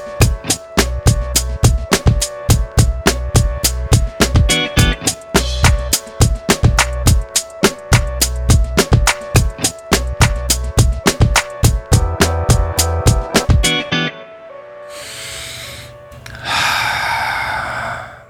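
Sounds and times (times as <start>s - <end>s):
rhythmic pulsing musical passage: 0.0s - 14.1s
deep breath with long airy inhale and slow loud exhale: 14.9s - 18.2s.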